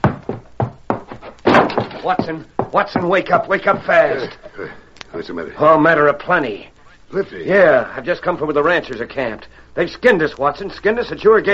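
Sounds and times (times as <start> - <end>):
heavy thuds and knocks: 0.0 - 4.2
house door bursting open: 1.4 - 2.2
speech: 2.0 - 11.5.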